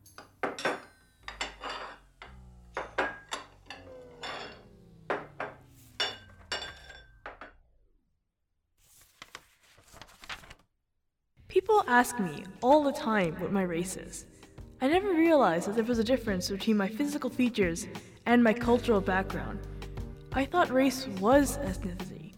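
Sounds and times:
dishes clinking and clattering as they are stacked on a table: 0:00.0 - 0:07.5
speech: 0:11.7 - 0:19.7, 0:20.4 - 0:22.1.

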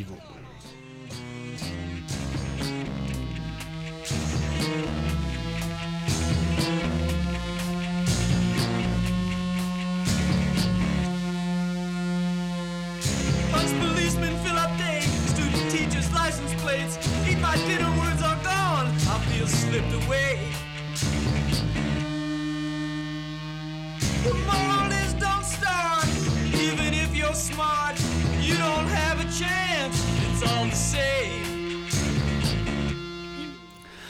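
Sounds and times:
rock track with guitar chords and drums: 0:00.0 - 0:34.0.

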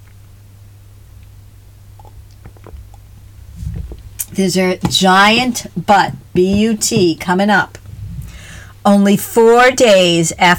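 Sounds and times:
steady low hum: 0:00.0 - 0:09.1
person sipping water at the mic: 0:02.0 - 0:04.3
speech: 0:04.4 - 0:07.8, 0:08.8 - 0:10.5.

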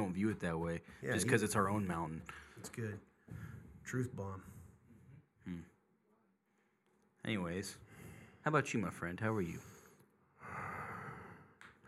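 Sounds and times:
speech: 0:00.1 - 0:04.6, 0:05.5 - 0:05.7, 0:07.2 - 0:09.7
heavy drawn-out rasping breath: 0:03.3 - 0:03.8, 0:07.8 - 0:08.4, 0:09.3 - 0:11.6.

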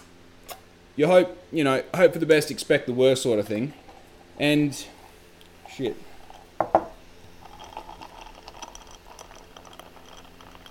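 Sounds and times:
speech: 0:01.0 - 0:03.8, 0:04.4 - 0:05.0, 0:05.7 - 0:06.7
drink pouring into a glass: 0:05.6 - 0:10.6
ice clinking against glass: 0:06.6 - 0:10.6.

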